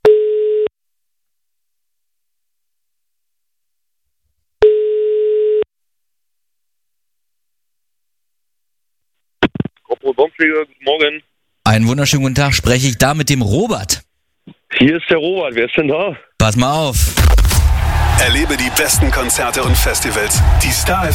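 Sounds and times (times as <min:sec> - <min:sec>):
telephone line tone while placing a call: 0:00.0 - 0:00.7, 0:04.6 - 0:05.7
speech: 0:10.0 - 0:14.1, 0:14.7 - 0:17.4, 0:18.2 - 0:21.1.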